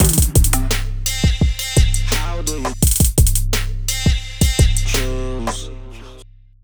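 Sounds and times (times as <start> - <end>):
hip hop drum kit: 0.0 - 5.2.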